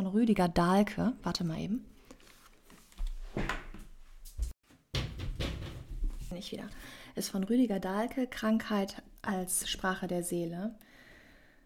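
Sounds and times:
speech: 0:00.1 - 0:02.0, 0:06.3 - 0:11.0
chair scraping and bumping around the room: 0:03.0 - 0:06.3.

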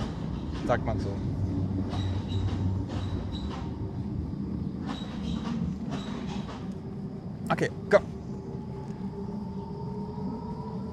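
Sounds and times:
tram wheels squealing: 0:00.0 - 0:08.7
tram in Germany rumbling past: 0:00.0 - 0:10.9
speech: 0:00.7 - 0:02.1, 0:07.5 - 0:08.2.

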